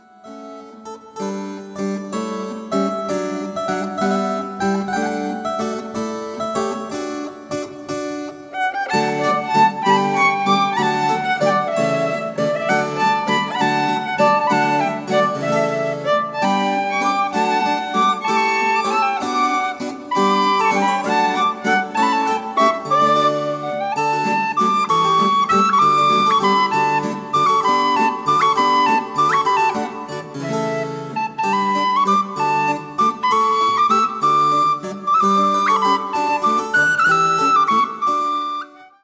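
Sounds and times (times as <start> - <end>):
piano: 0.0 - 39.0
violin: 2.8 - 39.0
tin whistle: 12.6 - 38.9.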